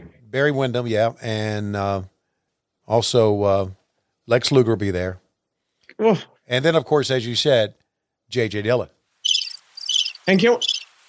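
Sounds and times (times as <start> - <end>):
speech: 0.3 - 2.1, 2.9 - 5.2, 6.0 - 9.0, 10.3 - 10.7
crickets chirping: 9.2 - 11.0.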